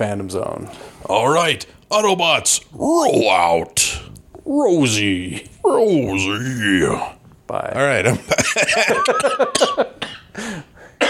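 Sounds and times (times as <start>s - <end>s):
speech: 0.0s - 11.0s
harsh coughing: 8.2s - 11.0s.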